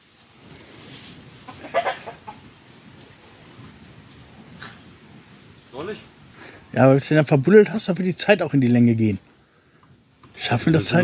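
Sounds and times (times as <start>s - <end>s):
steady outdoor hiss: 0.0s - 11.0s
rooster clucking: 1.4s - 2.6s
speech: 5.8s - 9.3s, 10.5s - 11.0s.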